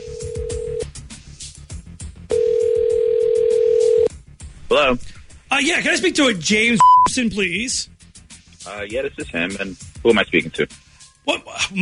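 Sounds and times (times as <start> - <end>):
telephone dial tone while placing call: 0.0 - 0.8, 2.3 - 4.1
speech: 4.7 - 5.0, 5.6 - 7.9, 8.7 - 11.7.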